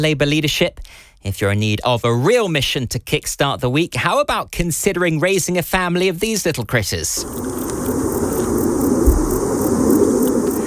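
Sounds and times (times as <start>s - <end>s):
speech: 0.0s - 8.2s
aeroplane rumble: 7.2s - 10.6s
bog bush cricket chirping: 7.2s - 10.6s.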